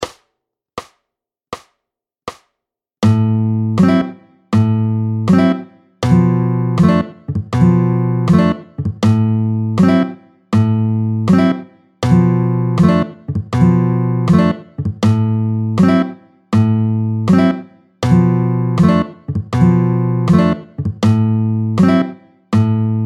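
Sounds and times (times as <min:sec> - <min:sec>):
la pompe rhythm guitar strumming at tempo 80: 0:03.0 - 0:23.0.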